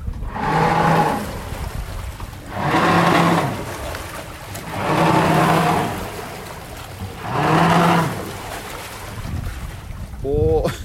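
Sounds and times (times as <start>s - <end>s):
low rumble of wind and water: 0.0s - 10.8s
boat's bow thruster whining: 0.1s - 1.5s, 2.4s - 3.9s, 4.6s - 6.4s, 7.0s - 8.4s.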